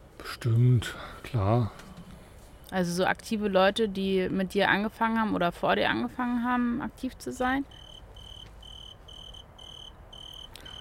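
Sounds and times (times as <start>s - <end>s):
speech: 0.2s - 1.9s, 2.7s - 7.8s
cricket chirping: 7.7s - 10.8s.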